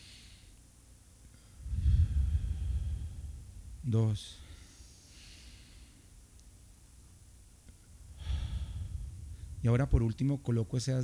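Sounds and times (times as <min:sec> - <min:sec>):
slow deep breath during a guided breathing and relaxation exercise: 0:01.3 - 0:06.4, 0:07.7 - 0:09.9
speech: 0:03.8 - 0:04.4, 0:09.6 - 0:11.0.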